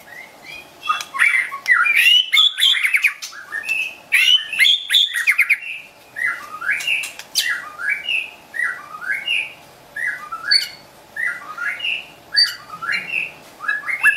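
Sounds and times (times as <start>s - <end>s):
wild white-rumped shama singing in a forest near Medan: 0.0s - 14.1s.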